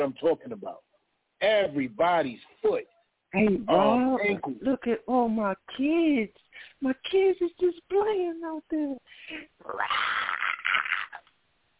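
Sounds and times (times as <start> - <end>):
speech: 0.0 - 10.3
cat yowling: 9.6 - 11.2.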